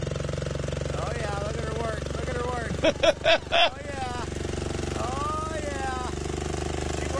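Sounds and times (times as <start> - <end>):
truck engine revving in neutral: 0.0 - 7.1
laughter: 2.7 - 4.3
speech: 2.8 - 3.9.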